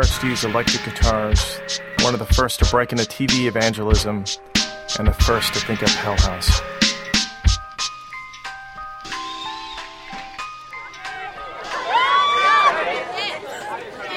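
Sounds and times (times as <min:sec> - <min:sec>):
speech: 0:00.0 - 0:06.8
simple chiming tune: 0:06.4 - 0:12.6
crowd of teenagers chattering while lined up for a church production: 0:10.5 - 0:14.1.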